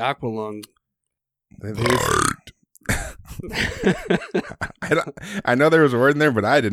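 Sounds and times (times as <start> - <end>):
speech: 0.0 - 0.8, 1.5 - 2.5, 3.4 - 6.7
loud drawn-out burp: 1.8 - 2.5
people laughing: 3.3 - 5.4.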